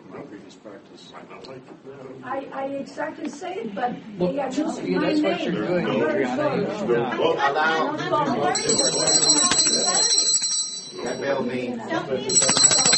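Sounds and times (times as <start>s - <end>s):
murmur of overlapping voices: 0.0s - 12.9s
speech: 1.0s - 10.2s, 11.0s - 12.8s
chair's loud bright bell ringing to call order: 8.5s - 12.9s.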